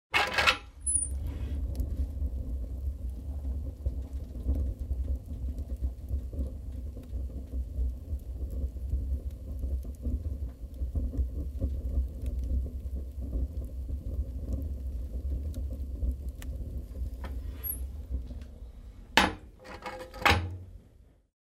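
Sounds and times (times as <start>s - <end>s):
oven door opening and closing: 0.1s - 1.0s, 19.2s - 20.7s
fire burning in an oven: 0.1s - 21.3s.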